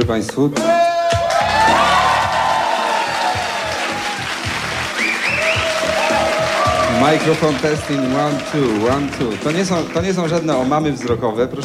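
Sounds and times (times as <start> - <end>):
rhythmic musical backing: 0.0 - 11.6
speech: 0.1 - 0.9, 7.0 - 11.6
crowd cheering and whooping: 1.0 - 9.1
crowd applause celebrating a radio station's 30th anniversary: 1.1 - 11.6.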